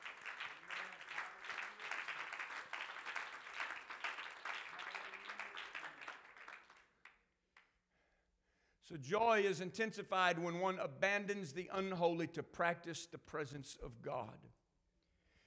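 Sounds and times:
church congregation clapping hands in worship: 0:00.0 - 0:07.7
speech: 0:08.9 - 0:14.6.

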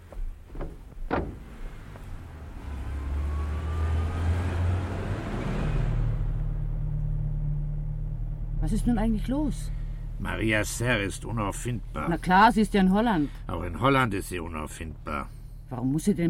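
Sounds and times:
sharp thuds of someone getting into a car: 0:00.0 - 0:02.4
car engine starting and car driving off: 0:00.0 - 0:16.2
speech: 0:08.7 - 0:16.2.

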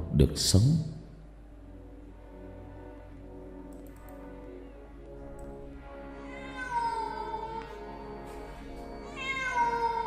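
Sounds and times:
cat meowing plaintively: 0:06.1 - 0:07.8, 0:09.0 - 0:10.0.

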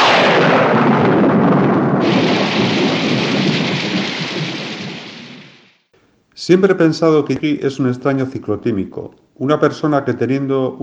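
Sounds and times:
deep rumbling thunder: 0:00.0 - 0:05.8
heavy steady rain pouring down: 0:00.0 - 0:05.8
speech: 0:06.5 - 0:10.8.

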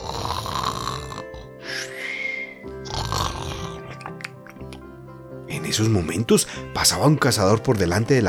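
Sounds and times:
sleeping wolf snoring loudly: 0:00.0 - 0:04.2
speech: 0:05.7 - 0:08.2.

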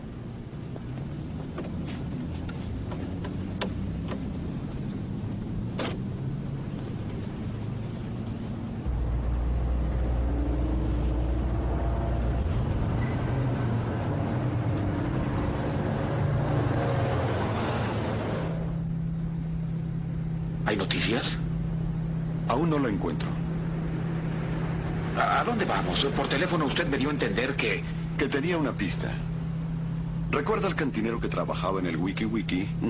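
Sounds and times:
steady low car engine rumble: 0:00.0 - 0:32.8
clicks and knocks of someone getting into a car: 0:01.0 - 0:04.3
speech: 0:20.8 - 0:21.4, 0:22.5 - 0:23.3, 0:25.4 - 0:29.3, 0:30.3 - 0:32.8.

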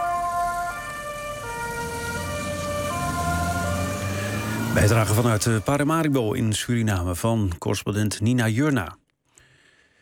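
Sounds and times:
ambulance siren wailing arriving at a hospital: 0:00.0 - 0:06.2
low road rumble: 0:00.0 - 0:07.3
speech: 0:04.8 - 0:09.0.

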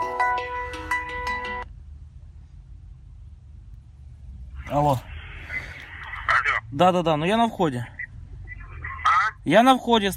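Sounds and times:
mobile phone ringtone for an incoming call: 0:00.0 - 0:01.6
speech: 0:04.7 - 0:05.1, 0:06.7 - 0:08.0, 0:09.4 - 0:10.1.

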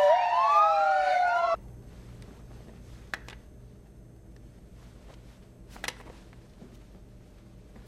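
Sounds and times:
police car siren wailing: 0:00.0 - 0:01.6.

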